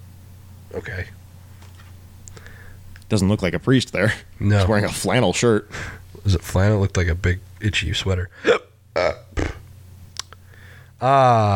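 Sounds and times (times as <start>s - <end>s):
low steady hum: 0.0s - 11.5s
speech: 0.7s - 1.2s, 3.1s - 9.5s, 11.0s - 11.5s
throaty burps with a hiccup-like catch: 8.4s - 9.7s
sharp clicks: 10.1s - 10.4s.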